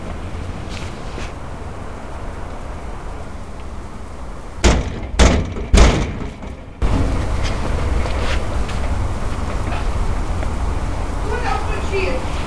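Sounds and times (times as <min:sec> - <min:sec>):
ambient noise: 0:00.0 - 0:12.4
heavy knocks on a door: 0:04.6 - 0:06.6.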